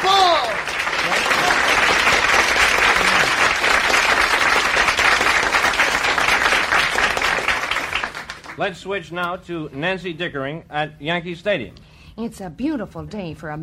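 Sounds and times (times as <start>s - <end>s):
audience applause: 0.0s - 8.6s
speech: 8.6s - 13.6s.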